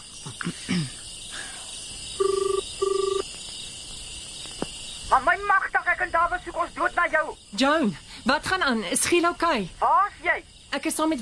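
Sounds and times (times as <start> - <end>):
speech: 0.2 - 1.0, 5.4 - 11.2
telephone double ring heard during a call: 2.2 - 3.2.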